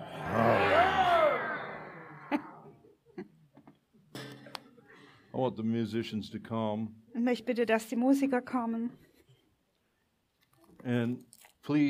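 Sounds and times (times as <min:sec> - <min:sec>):
crowd roaring: 0:00.0 - 0:02.8
people chuckling: 0:01.6 - 0:03.8
speech: 0:05.4 - 0:09.1, 0:10.8 - 0:11.8.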